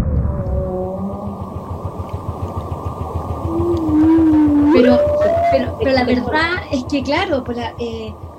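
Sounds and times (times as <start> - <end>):
blue whale call: 0.1 - 6.7
speech: 6.9 - 8.3.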